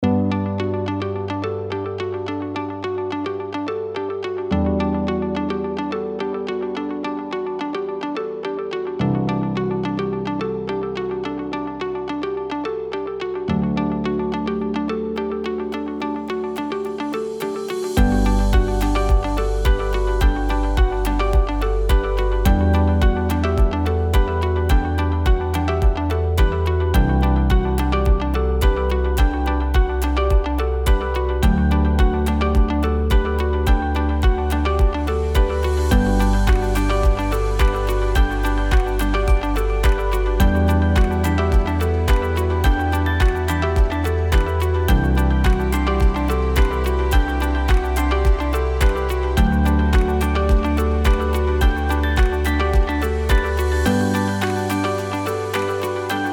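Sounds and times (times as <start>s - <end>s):
easy corporate background music: 0.0s - 56.3s.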